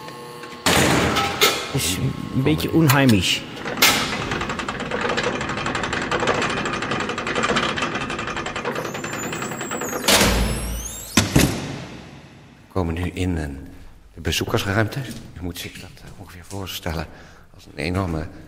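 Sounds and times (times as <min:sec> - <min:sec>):
mechanical whirring and rattling: 0:00.0 - 0:12.7
speech: 0:01.8 - 0:03.7, 0:13.0 - 0:18.4
brief squeal: 0:08.8 - 0:11.2.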